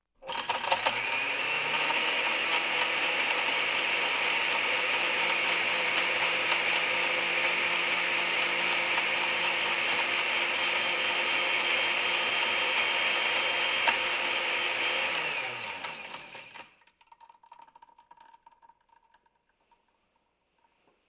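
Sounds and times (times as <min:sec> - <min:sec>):
kitchen mixer running: 0:00.2 - 0:16.8.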